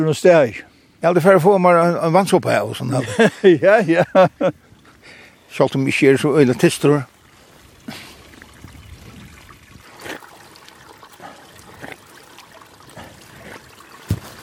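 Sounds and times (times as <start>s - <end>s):
speech: 0.0s - 4.6s, 5.5s - 7.1s
water trickling and burbling: 1.2s - 14.4s
laughter: 2.9s - 4.6s
sharp splashy bursts of water: 5.0s - 14.4s.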